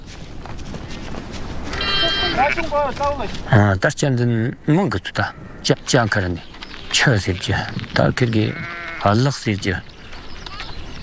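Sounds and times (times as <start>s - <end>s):
lamb fallen behind its flock bleating: 1.7s - 2.7s, 8.4s - 9.2s
speech: 2.4s - 9.9s.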